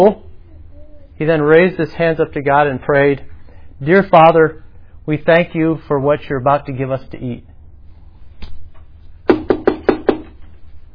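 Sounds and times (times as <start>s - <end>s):
speech: 0.0s - 0.2s, 1.2s - 7.5s
baker knocking on a wooden door: 9.3s - 10.4s.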